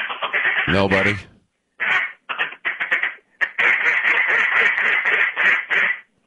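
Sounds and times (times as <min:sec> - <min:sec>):
person imitating a duck call with raspy quacks: 0:00.0 - 0:06.0
speech: 0:00.7 - 0:01.3.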